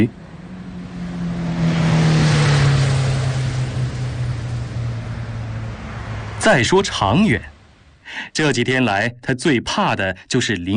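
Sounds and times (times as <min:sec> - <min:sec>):
speech: 0:00.0 - 0:00.2, 0:06.4 - 0:07.5, 0:08.1 - 0:10.7
car engine humming: 0:00.0 - 0:08.2.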